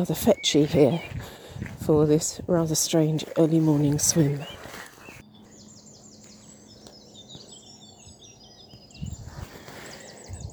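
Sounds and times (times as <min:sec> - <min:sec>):
water birds on a nearby lake: 0:00.0 - 0:01.6, 0:02.6 - 0:08.9
speech: 0:00.0 - 0:04.6
birdsong at dawn by a river: 0:00.0 - 0:10.5.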